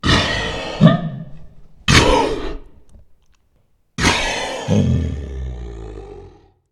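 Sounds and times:
monster coughing: 0.0s - 2.8s, 4.0s - 6.5s.

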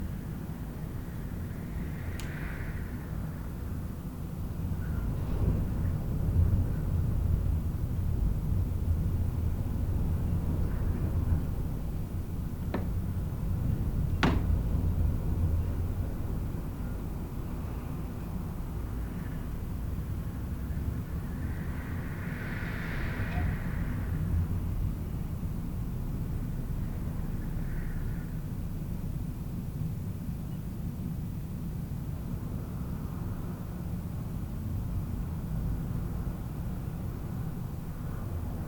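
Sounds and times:
wind: 0.0s - 38.6s.

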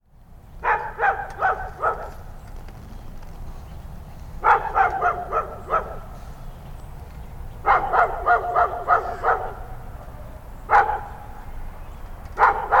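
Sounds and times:
dog barking: 0.6s - 2.2s, 4.4s - 6.2s, 7.6s - 9.7s, 10.7s - 11.2s, 12.4s - 12.7s.

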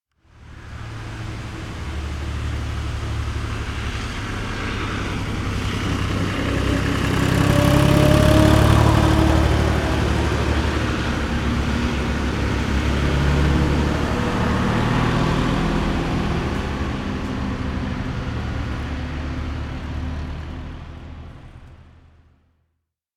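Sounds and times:
building site digger driving past: 0.3s - 22.1s.

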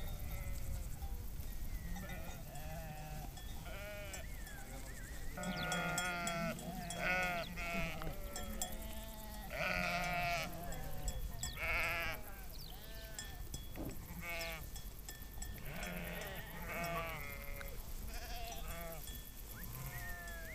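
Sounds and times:
flock of sheep bleating: 0.1s - 0.9s, 1.8s - 13.4s, 14.0s - 14.6s, 15.6s - 20.5s.

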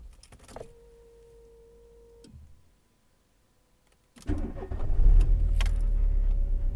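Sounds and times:
engine starting with keys: 4.2s - 6.6s.

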